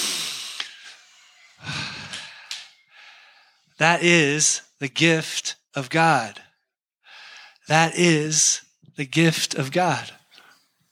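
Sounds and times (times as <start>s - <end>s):
group of people taking a deep breath: 0.0s - 3.8s, 7.0s - 7.6s
speech: 3.8s - 6.4s, 7.7s - 10.2s.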